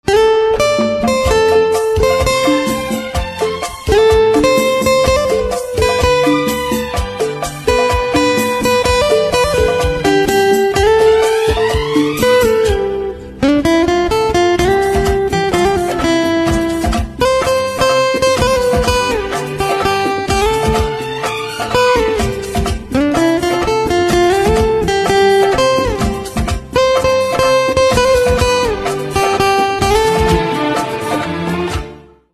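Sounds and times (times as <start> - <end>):
instrumental guitar ringtone: 0.0 - 31.8.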